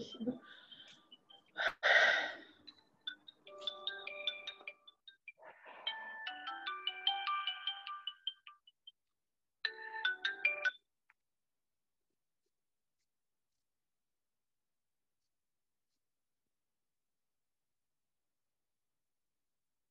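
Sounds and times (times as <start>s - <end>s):
sharp breathy gasp: 1.6s - 2.6s
mobile phone ringtone with bright electronic melody: 2.3s - 8.8s, 9.6s - 10.8s.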